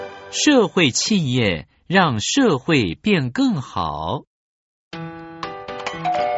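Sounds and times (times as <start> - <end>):
speech: 0.4 - 4.3
doorbell chiming: 5.9 - 6.3.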